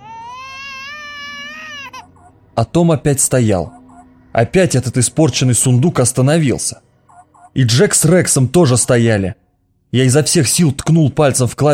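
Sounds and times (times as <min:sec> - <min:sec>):
child crying with a high-pitched wail: 0:00.0 - 0:02.2
speech: 0:02.6 - 0:03.8, 0:04.4 - 0:06.9, 0:07.6 - 0:11.7.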